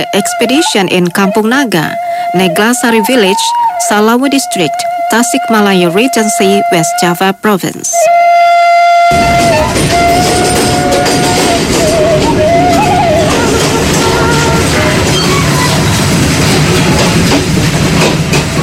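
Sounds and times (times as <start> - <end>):
horn-like tone: 0.0 - 7.3, 8.0 - 15.5
speech: 0.0 - 10.6
diesel train engine roaring: 8.2 - 18.6.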